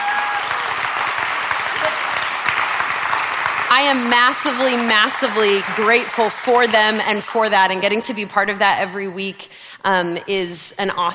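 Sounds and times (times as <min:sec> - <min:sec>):
church audience clapping: 0:00.0 - 0:08.8
speech: 0:03.8 - 0:11.1.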